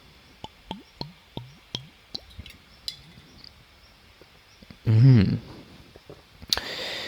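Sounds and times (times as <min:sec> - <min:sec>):
person drinking water from a glass: 0:00.4 - 0:03.2
breathy exhale: 0:06.6 - 0:07.0.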